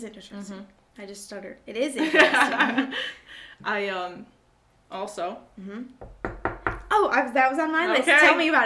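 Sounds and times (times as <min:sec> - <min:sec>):
speech: 0:00.0 - 0:06.2, 0:07.0 - 0:08.6
knocks on wood: 0:06.0 - 0:07.0.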